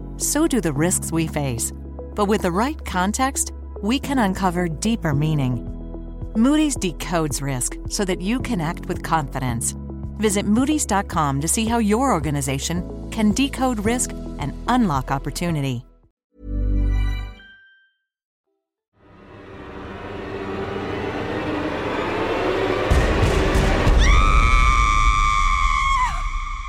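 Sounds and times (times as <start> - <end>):
speech: 0.2 - 5.8, 6.4 - 15.9
rushing noise roar: 19.1 - 24.5
people screaming: 22.9 - 26.5.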